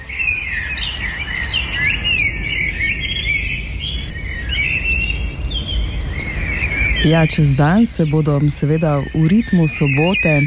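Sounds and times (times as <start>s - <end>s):
dawn chorus of many birds singing and chirping in Ljubljana Slovenia: 0.0s - 10.4s
steady low outdoor rumble: 3.8s - 10.4s
speech: 7.0s - 10.4s.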